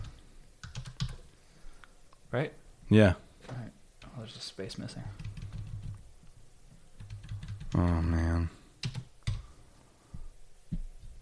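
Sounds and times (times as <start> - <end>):
soft typing on a computer keyboard: 0.0 - 1.2, 5.2 - 6.0, 7.0 - 8.0, 8.8 - 9.4
speech: 2.3 - 5.3.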